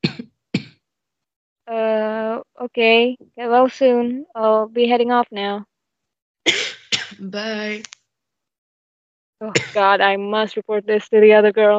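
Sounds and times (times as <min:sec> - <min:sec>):
person coughing: 0:00.0 - 0:00.8, 0:06.5 - 0:07.2, 0:09.5 - 0:09.8
speech: 0:02.6 - 0:05.7, 0:06.4 - 0:08.0, 0:09.4 - 0:11.7.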